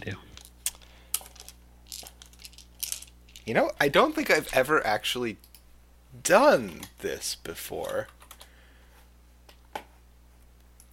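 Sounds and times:
speech: 0.0s - 0.3s, 3.4s - 5.5s, 6.1s - 8.2s
dice clattering across a hard surface: 0.4s - 3.5s.

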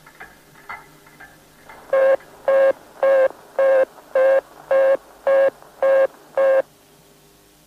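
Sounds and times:
American telephone busy tone for engaged local lines: 1.9s - 6.7s.

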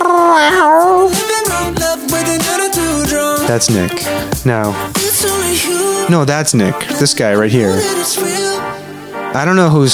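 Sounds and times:
cat meows sound effect: 0.0s - 1.0s
busy musical backing with stepping bass notes: 0.3s - 8.8s
speech: 3.5s - 8.3s, 9.3s - 9.9s.

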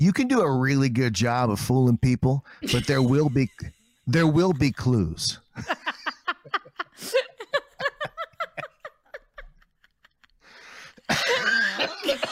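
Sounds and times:
speech: 0.0s - 5.8s
people laughing: 2.7s - 12.3s
person coughing: 11.1s - 12.3s.

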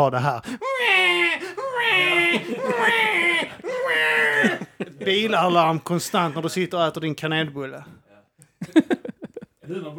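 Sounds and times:
speech: 0.0s - 8.0s, 8.6s - 9.1s
person imitating a screaming crying baby: 0.6s - 4.6s
laughter: 0.8s - 6.4s, 8.6s - 9.9s.

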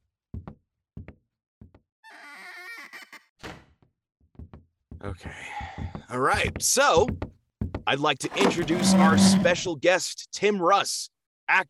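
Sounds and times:
speech: 5.0s - 7.2s, 7.9s - 11.6s
door opening with a drawn-out creaking tonal groan: 8.2s - 9.7s.

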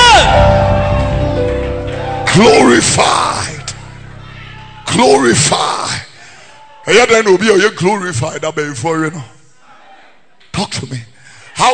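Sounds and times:
audience screaming and shouting: 0.0s - 7.1s
speech: 2.4s - 3.2s, 5.0s - 5.8s, 6.9s - 9.4s, 10.6s - 11.7s.

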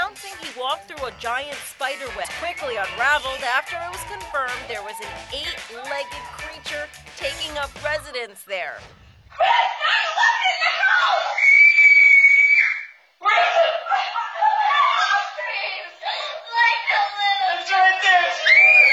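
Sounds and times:
laughter: 0.0s - 8.5s, 13.2s - 18.9s
speech: 0.6s - 11.3s
girls screaming in fright: 2.0s - 7.4s, 9.3s - 18.9s.

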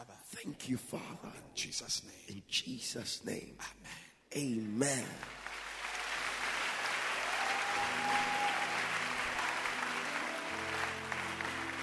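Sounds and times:
speech: 0.4s - 5.5s
audience clapping at a church service: 5.0s - 11.8s.

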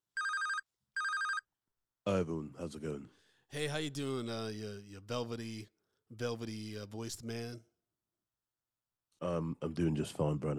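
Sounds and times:
electronic phone ring tone for an outgoing call: 0.2s - 1.5s
speech: 2.1s - 7.7s, 9.2s - 10.5s.

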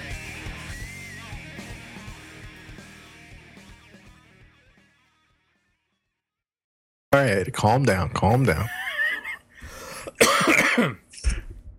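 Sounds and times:
speech: 7.2s - 8.8s, 10.8s - 11.0s
person coughing: 9.9s - 11.5s.

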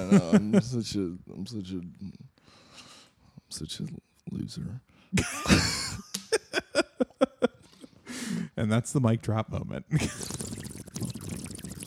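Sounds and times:
speech: 0.0s - 2.6s, 3.5s - 6.4s, 8.6s - 10.4s
person drinking from a water bottle: 10.1s - 11.8s.

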